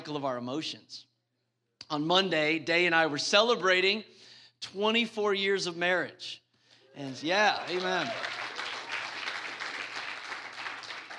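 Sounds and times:
speech: 0.1s - 1.1s, 1.9s - 6.4s, 7.0s - 8.4s
crowd applauding for a couple's wedding anniversary: 7.0s - 11.1s.

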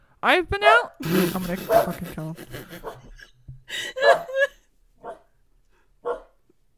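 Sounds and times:
speech: 0.2s - 3.1s
murmur of a voice: 1.0s - 3.0s
laughter: 1.0s - 4.6s
dog barking: 5.0s - 5.3s, 6.0s - 6.4s.

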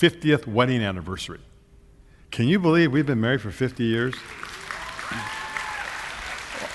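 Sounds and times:
speech: 0.0s - 1.5s, 2.3s - 5.3s
audience applause: 4.1s - 6.7s
faint cheers or voices: 4.6s - 6.7s.

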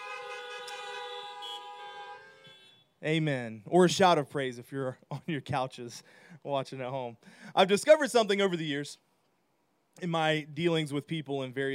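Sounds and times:
several car horns honking together: 0.0s - 3.0s
speech: 3.0s - 9.0s, 10.0s - 11.7s.

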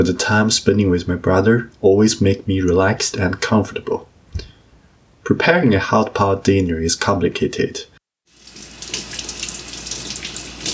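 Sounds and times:
speech: 0.0s - 4.1s, 5.3s - 7.9s
tap water running into a sink while washing vegetables: 8.3s - 10.7s.

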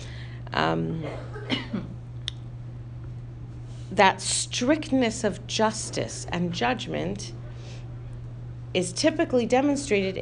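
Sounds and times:
steady low electrical hum: 0.0s - 10.1s
speech: 0.6s - 1.9s, 3.9s - 7.4s, 8.7s - 10.1s
person coughing: 1.0s - 2.0s.

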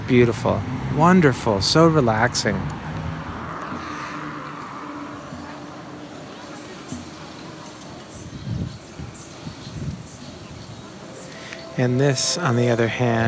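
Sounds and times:
city traffic noise at an intersection: 0.0s - 13.2s
louder vehicles rumbling past: 0.0s - 13.2s
speech: 0.1s - 2.8s, 11.8s - 13.2s
indistinct voices: 3.5s - 13.2s.

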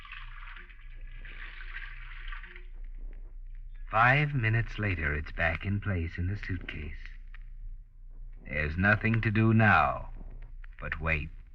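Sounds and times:
water running from a sink faucet into a container: 0.0s - 2.6s
low hum: 0.0s - 11.5s
speech: 3.9s - 7.0s, 8.5s - 10.1s, 10.8s - 11.4s.

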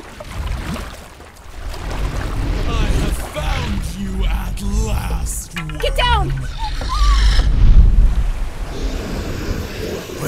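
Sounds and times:
water wash and splashing from a large boat: 0.0s - 10.2s
large boat moving through water: 1.5s - 9.2s.

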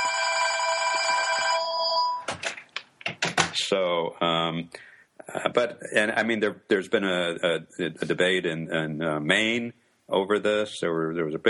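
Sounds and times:
old-style telephone bell ringing loudly: 0.0s - 2.3s
speech: 3.7s - 11.4s.

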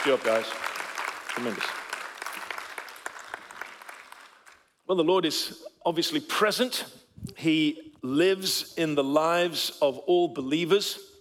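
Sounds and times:
speech: 0.0s - 0.7s, 1.4s - 1.8s, 4.9s - 11.1s
audience applauding: 0.0s - 4.7s.

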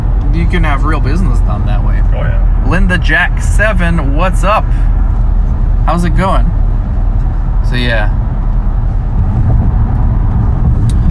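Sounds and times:
car driving in road traffic in Los Angeles: 0.0s - 11.0s
speech: 0.4s - 5.0s, 5.8s - 6.6s, 7.6s - 8.2s.

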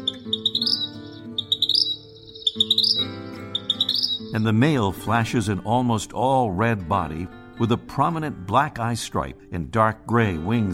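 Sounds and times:
vermilion flycatcher calling: 0.0s - 4.6s
speech: 4.3s - 10.7s.

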